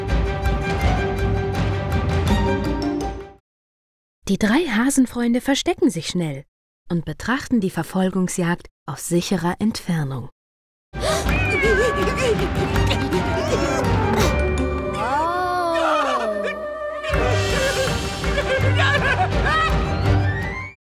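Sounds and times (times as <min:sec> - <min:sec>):
energetic music: 0:00.0 - 0:03.4, 0:11.2 - 0:15.5, 0:17.1 - 0:20.7
speech: 0:04.3 - 0:13.8
laughter: 0:11.0 - 0:14.3, 0:15.7 - 0:19.9
cat meowing while chasing a rat: 0:11.3 - 0:12.9.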